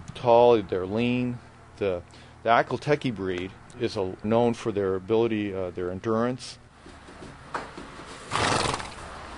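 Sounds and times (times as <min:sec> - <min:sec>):
speech: 0:00.2 - 0:06.6
4-year-old Nez Perce stallion whinnying: 0:08.2 - 0:09.0.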